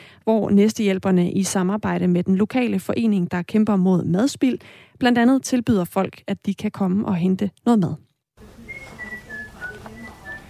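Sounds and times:
speech: 0:00.2 - 0:08.1
busy room tone: 0:08.4 - 0:10.4
man whistling a melody while sorting fruit at a food aid charity in Frederikshavn Denmark: 0:08.7 - 0:10.4.

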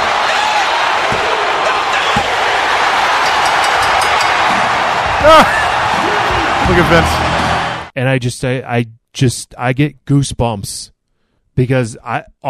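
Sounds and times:
big arena crowd chanting in unison counting along with a wrestling pin: 0:00.0 - 0:07.9
speech: 0:05.3 - 0:05.6, 0:06.7 - 0:07.2, 0:08.0 - 0:10.9, 0:11.6 - 0:12.4.

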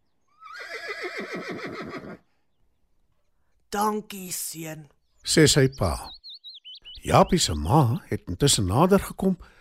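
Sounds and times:
small grey horse neighing: 0:00.3 - 0:02.2
speech: 0:03.8 - 0:06.2, 0:07.0 - 0:09.5.

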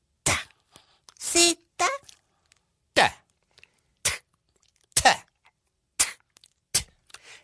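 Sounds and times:
vocal beatbox bass-drum sounds made with the mouth: 0:00.2 - 0:00.6, 0:04.0 - 0:04.3, 0:06.0 - 0:07.0.

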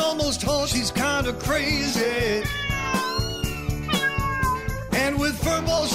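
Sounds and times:
speech: 0:00.2 - 0:02.6
steady rhythmic beat: 0:00.4 - 0:05.9
cat meowing: 0:02.4 - 0:04.9.

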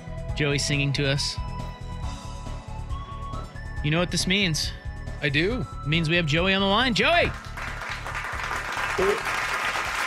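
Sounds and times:
speech: 0:00.4 - 0:01.4, 0:03.8 - 0:07.5, 0:09.0 - 0:09.4
crowd applause: 0:07.2 - 0:10.0.

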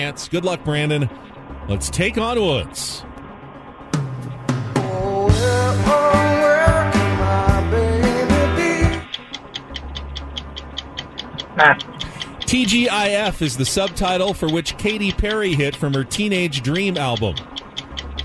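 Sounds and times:
speech: 0:00.0 - 0:03.1, 0:11.6 - 0:17.5
game show countdown music with plucky bass and tinkling melody: 0:00.0 - 0:03.2, 0:04.0 - 0:18.2
clock ticking: 0:09.0 - 0:18.2.

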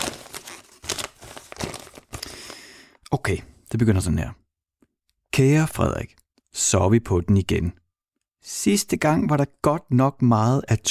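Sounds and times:
paper letter crinkling and rustling as it is unfolded and opened: 0:00.0 - 0:02.6
speech: 0:03.1 - 0:04.4, 0:05.4 - 0:07.8, 0:08.4 - 0:10.8.

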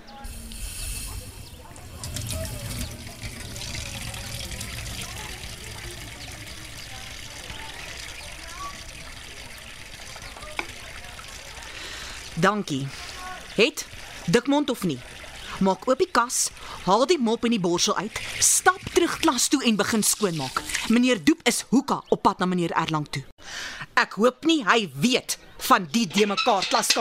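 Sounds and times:
water running from a tap into a container: 0:00.4 - 0:12.4, 0:13.1 - 0:21.0
speech: 0:12.4 - 0:23.3, 0:24.0 - 0:27.0.

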